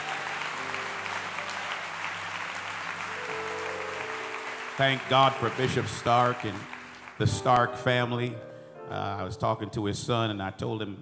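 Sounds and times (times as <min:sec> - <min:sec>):
audience clapping hands: 0:00.0 - 0:08.4
speech: 0:04.8 - 0:10.9.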